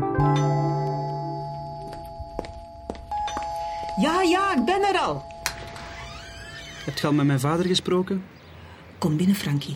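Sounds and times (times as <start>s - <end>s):
doorbell chiming: 0.2s - 6.2s
speech: 4.0s - 5.3s, 6.9s - 8.4s, 9.0s - 9.7s.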